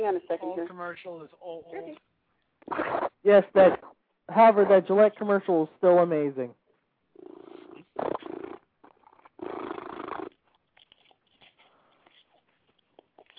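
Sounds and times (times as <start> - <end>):
speech: 0.0 - 6.6
cat purring: 7.2 - 10.4.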